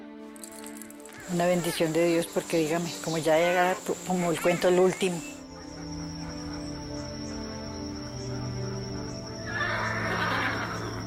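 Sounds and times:
faint insect chirping: 0:00.3 - 0:11.0
speech: 0:01.3 - 0:05.4
horse whinnying with a quavering neigh: 0:09.5 - 0:11.0.

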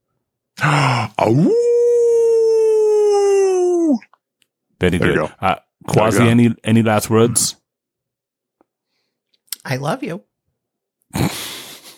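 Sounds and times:
short gruff grunt: 0:00.6 - 0:01.6, 0:05.0 - 0:06.4
speech: 0:00.6 - 0:01.7, 0:04.8 - 0:07.6, 0:09.6 - 0:10.3
person imitating a wolf howl: 0:00.6 - 0:04.1.

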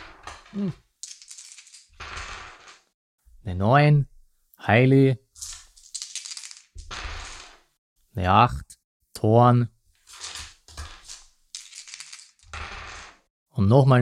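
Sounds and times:
three dice rolled for a tabletop game: 0:00.0 - 0:02.9, 0:05.4 - 0:07.7, 0:10.0 - 0:13.3
speech: 0:00.5 - 0:00.8, 0:03.4 - 0:05.5, 0:08.2 - 0:09.7, 0:13.6 - 0:14.0.

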